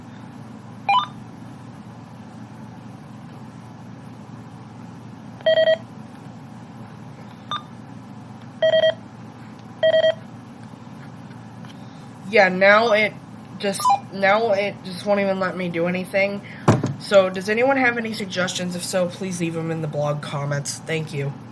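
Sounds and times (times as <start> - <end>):
steady low hum: 0.0 - 21.4
scanner beeping after being restarted: 0.9 - 1.2, 5.4 - 5.8, 7.5 - 7.7, 8.6 - 9.0, 9.8 - 10.2
speech: 12.4 - 21.4.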